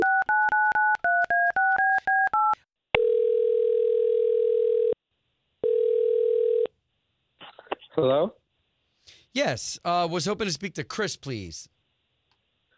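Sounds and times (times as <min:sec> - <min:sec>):
telephone ringing tones: 0:00.0 - 0:05.0, 0:05.6 - 0:06.7
speech: 0:08.0 - 0:08.4, 0:09.3 - 0:11.8.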